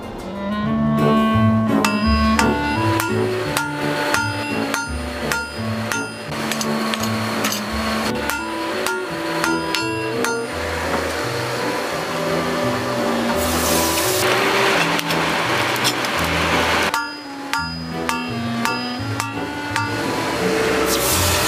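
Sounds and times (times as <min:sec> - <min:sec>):
steady low drone: 0:00.0 - 0:21.4
blacksmith's hammer striking hot metal on an anvil in a forge over 70 years old: 0:01.8 - 0:11.1, 0:16.8 - 0:20.4.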